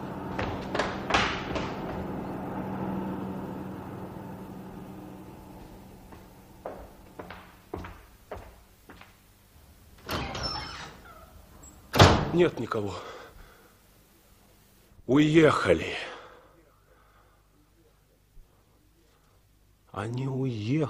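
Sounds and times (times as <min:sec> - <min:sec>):
bus engine drone pulling away from a bus station at night: 0:00.0 - 0:07.4
sharp knocks: 0:00.3 - 0:02.1
speech: 0:12.4 - 0:13.2, 0:15.1 - 0:16.0, 0:20.0 - 0:20.8.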